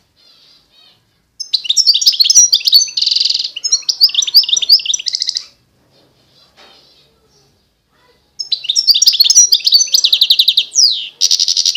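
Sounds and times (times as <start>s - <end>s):
wild European goldfinch singing: 0.2s - 5.6s, 8.4s - 11.7s.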